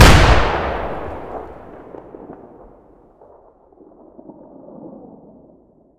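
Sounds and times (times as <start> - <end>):
M397A1 grenade explosion: 0.0 - 3.4.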